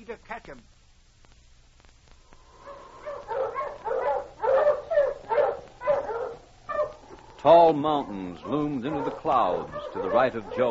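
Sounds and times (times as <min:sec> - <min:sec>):
speech: 0:00.1 - 0:00.8, 0:07.4 - 0:10.6
pack of sled dogs barking and whimpering excitedly: 0:02.6 - 0:10.6.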